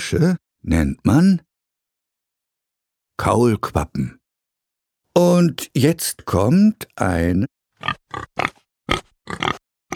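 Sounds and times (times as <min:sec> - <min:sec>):
speech: 0:00.1 - 0:01.5, 0:03.2 - 0:04.2, 0:05.2 - 0:09.6
pig grunting: 0:07.8 - 0:09.9.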